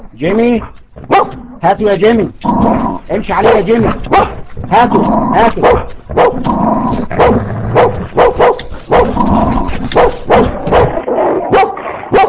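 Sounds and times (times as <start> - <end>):
speech: 0.0 - 7.4
dog barking with yelps: 1.1 - 1.5, 3.4 - 4.5, 5.4 - 6.5, 7.1 - 9.3, 9.9 - 12.2.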